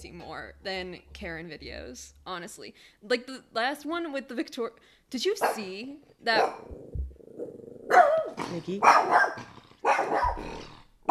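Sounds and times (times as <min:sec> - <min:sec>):
speech: 0:00.0 - 0:07.0, 0:07.9 - 0:11.1
dog barking: 0:05.4 - 0:06.7, 0:07.9 - 0:11.1.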